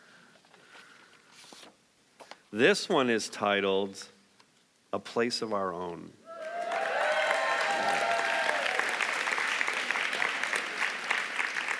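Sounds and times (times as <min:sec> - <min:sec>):
speech: 0:02.5 - 0:04.2, 0:04.9 - 0:06.2
audience applauding in a church: 0:06.3 - 0:11.7.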